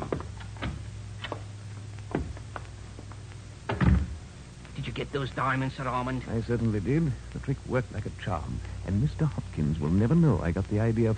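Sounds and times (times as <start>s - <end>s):
door opening and closing with latch clicks and creaks: 0.0s - 1.5s, 3.7s - 4.2s
low steady hum: 0.0s - 11.1s
speech: 5.1s - 11.1s.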